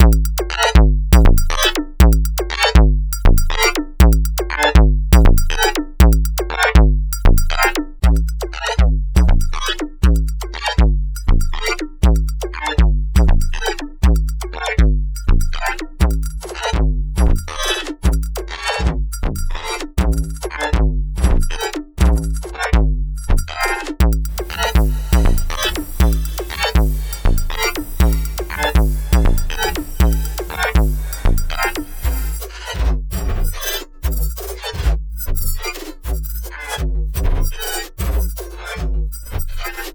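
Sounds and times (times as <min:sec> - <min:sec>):
hybrid drums: 0:00.0 - 0:39.9.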